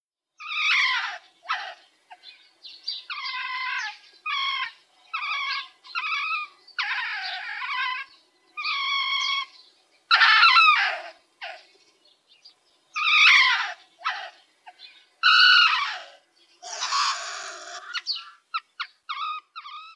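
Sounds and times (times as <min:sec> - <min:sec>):
Martes martes pine marten screeching and rasping calls: 0:00.4 - 0:01.8, 0:03.1 - 0:09.5, 0:10.1 - 0:11.6, 0:13.0 - 0:14.4, 0:15.2 - 0:19.9.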